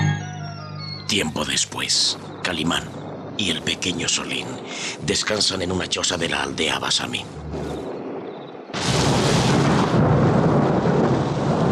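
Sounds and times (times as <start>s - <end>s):
speech: 1.1s - 7.9s
thunder in a thunderstorm: 2.4s - 11.6s.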